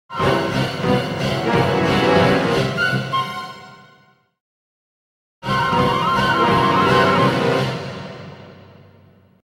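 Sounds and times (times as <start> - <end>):
comedy orchestra music logo: 0.1 - 4.1, 5.4 - 8.4.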